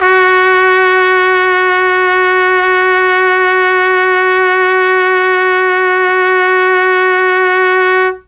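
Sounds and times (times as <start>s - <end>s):
F#2 Mellotron trumpet note: 0.0s - 8.2s.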